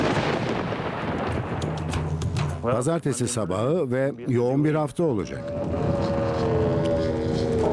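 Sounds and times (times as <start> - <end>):
wind and rain roaring on a windy rainy morning: 0.0 - 2.4, 5.4 - 7.7
speech: 2.6 - 6.0
deep rumbling wind buffet: 5.3 - 7.7.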